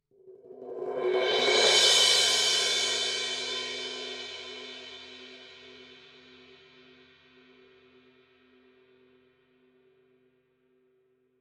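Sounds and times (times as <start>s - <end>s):
heavy cymbal roll: 0.9s - 6.8s.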